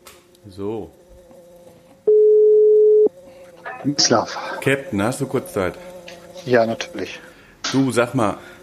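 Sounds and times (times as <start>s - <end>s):
faint hum: 0.0s - 8.6s
speech: 0.4s - 1.0s, 3.8s - 8.5s
telephone ringback tone: 2.1s - 3.1s.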